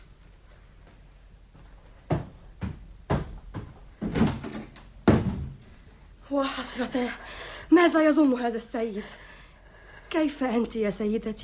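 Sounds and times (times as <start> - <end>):
door pushed shut with solid thuds and knocks: 4.0 - 5.6
speech: 6.4 - 9.3, 10.1 - 11.4.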